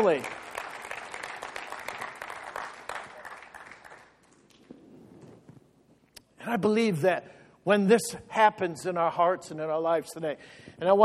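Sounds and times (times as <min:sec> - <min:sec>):
speech: 0:00.0 - 0:00.4, 0:06.5 - 0:11.0
audience clapping: 0:00.0 - 0:04.8.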